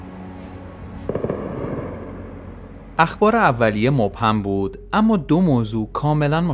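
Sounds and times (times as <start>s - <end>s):
constant low rumble: 0.0s - 6.5s
cluster of sharp booming explosions: 1.0s - 3.4s
speech: 3.0s - 6.5s.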